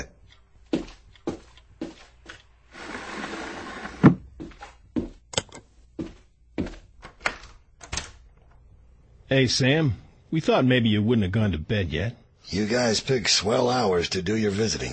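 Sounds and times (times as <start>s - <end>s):
corridor door sliding shut: 2.8s - 4.2s
speech: 9.3s - 14.9s.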